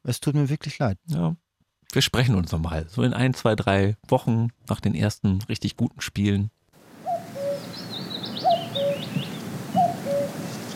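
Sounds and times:
speech: 0:00.0 - 0:06.6
steady outdoor hiss: 0:06.7 - 0:10.7
bird calling with short low whistled notes: 0:07.0 - 0:10.7.

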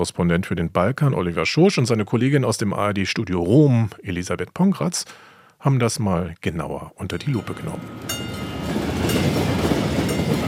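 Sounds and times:
speech: 0:00.0 - 0:08.3
train passing over a railway level crossing: 0:07.2 - 0:10.4.

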